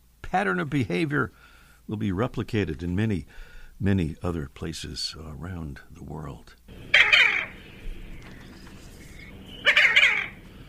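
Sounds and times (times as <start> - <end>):
speech: 0.3 - 7.0
diving duck rough, buzzy calls: 6.8 - 7.6, 9.0 - 10.6.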